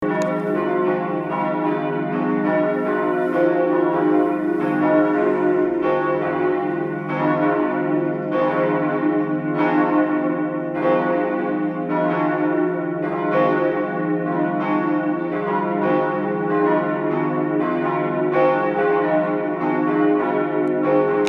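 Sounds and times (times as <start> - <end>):
bells in Bommern: 0.0 - 21.2.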